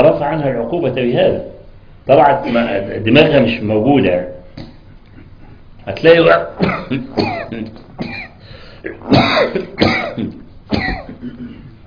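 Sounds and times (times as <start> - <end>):
speech: 0.0 - 4.7, 5.8 - 8.1, 8.8 - 11.6
person coughing during a religious talk: 2.4 - 2.8, 6.6 - 11.8
throat clearing during a religious talk: 6.6 - 11.8.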